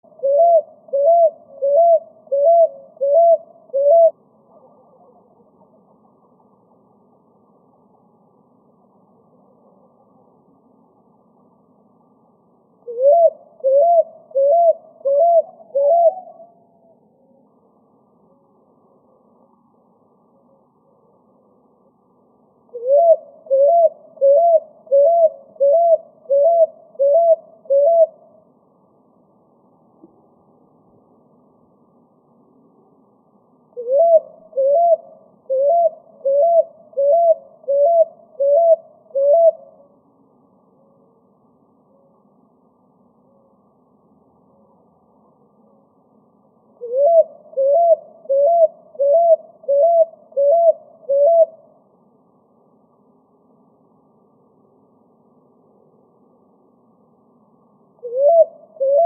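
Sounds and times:
picui ground dove singing: 0.0 - 6.4, 12.8 - 16.7, 22.7 - 28.2, 33.8 - 39.8, 46.8 - 51.6, 58.0 - 59.0.

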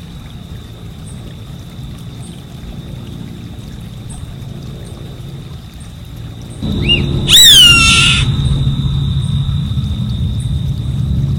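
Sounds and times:
high insect tone: 0.0 - 11.3
low rumbling: 4.2 - 11.3
bird chirp: 6.5 - 9.6
savanna hawk screaming: 6.7 - 8.8.

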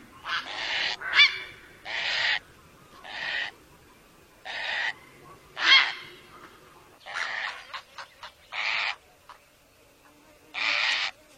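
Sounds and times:
great blue heron giving harsh rasping squawks: 0.2 - 2.4, 3.0 - 3.5, 4.4 - 5.0, 5.6 - 6.2, 7.0 - 9.0, 10.6 - 11.1.

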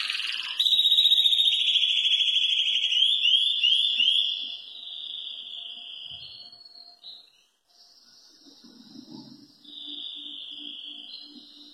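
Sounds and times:
German crested canary song: 0.0 - 11.7
faint low noise: 4.0 - 11.7.

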